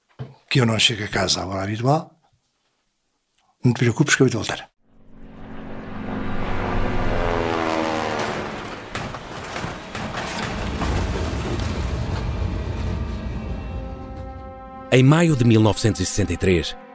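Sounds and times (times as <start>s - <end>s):
speech: 0.5s - 2.2s, 3.6s - 4.7s, 14.9s - 16.8s
damaged military airplane engine roaring and sputtering: 4.9s - 14.9s.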